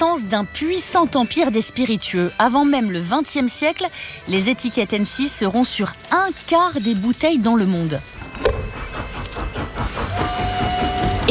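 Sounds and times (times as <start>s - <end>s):
speech: 0.0s - 8.2s
train rolling along the railway: 4.6s - 11.2s.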